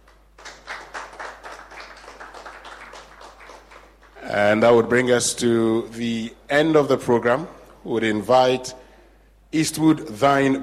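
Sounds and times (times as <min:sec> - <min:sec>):
audience round of applause: 0:00.1 - 0:04.2
speech: 0:04.3 - 0:08.8, 0:09.5 - 0:10.6.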